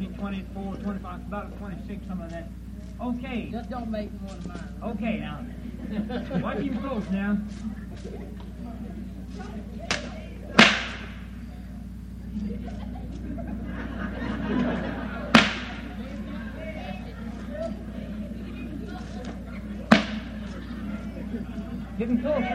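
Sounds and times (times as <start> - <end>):
laughter: 0.0 - 10.6, 11.2 - 22.5
murmur of voices: 0.0 - 22.5
speech: 0.2 - 10.1, 12.4 - 14.9, 22.0 - 22.5
whip cracking: 9.9 - 11.2, 15.3 - 15.9, 19.9 - 20.4.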